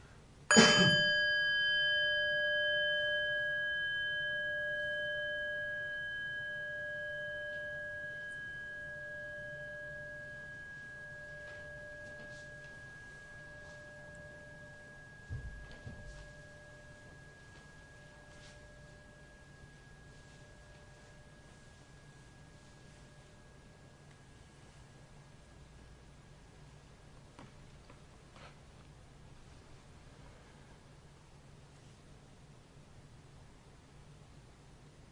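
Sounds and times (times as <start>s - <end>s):
small meditation bell ringing: 0.5s - 25.4s.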